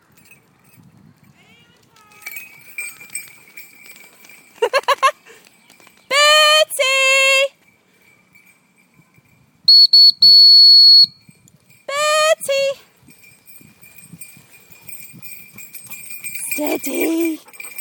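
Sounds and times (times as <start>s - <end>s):
faint outdoor murmur: 0.0s - 17.7s
loud whistles to call a dog: 9.7s - 11.2s.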